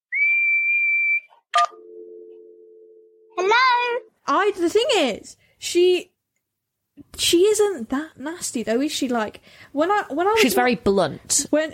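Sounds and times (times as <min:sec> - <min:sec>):
person whistling one long high note through pursed lips: 0:00.1 - 0:01.4
speech: 0:04.3 - 0:06.1, 0:07.2 - 0:11.7.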